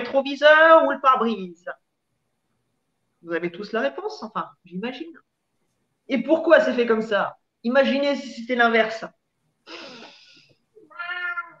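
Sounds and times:
speech: 0:00.1 - 0:01.8, 0:03.2 - 0:05.3, 0:06.1 - 0:09.9
cat meowing: 0:10.8 - 0:11.5.

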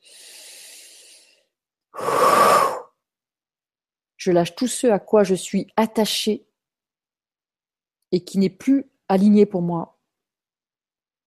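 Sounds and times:
deep breath drawn during a guided breathing exercise: 0:00.0 - 0:03.0
speech: 0:04.2 - 0:06.5, 0:08.1 - 0:09.9.

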